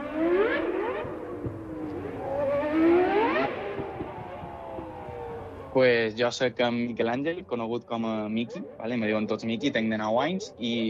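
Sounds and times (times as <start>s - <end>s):
racing car engine revving: 0.0s - 5.8s
speech: 5.8s - 10.8s.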